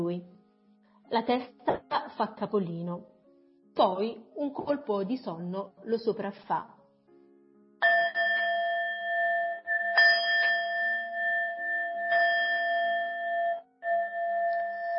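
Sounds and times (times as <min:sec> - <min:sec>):
speech: 0:00.0 - 0:00.4, 0:01.1 - 0:03.1, 0:03.8 - 0:06.8
bells tolling: 0:07.8 - 0:14.9.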